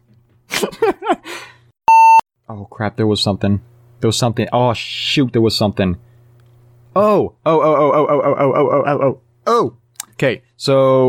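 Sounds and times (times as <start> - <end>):
speech: 0.6 - 1.5, 2.5 - 6.1, 6.9 - 11.0
cell phone beep: 1.9 - 2.2
person wordless voiced vocalizing: 7.5 - 9.2.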